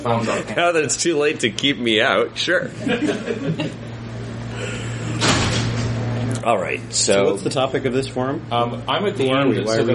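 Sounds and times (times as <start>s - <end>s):
speech: 0.0s - 3.9s, 6.4s - 9.9s
steady low room hum: 0.0s - 9.9s
laughter: 2.7s - 4.0s
door pushed shut at back of room: 5.2s - 5.8s.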